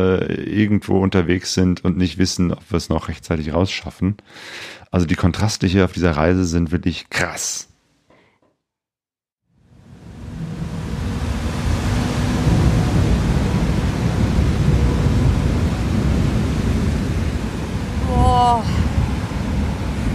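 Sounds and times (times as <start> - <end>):
speech: 0.0 - 7.7
heavy rain: 9.7 - 20.1
strong gusting wind: 9.7 - 20.1
deep low rumble: 9.9 - 20.1.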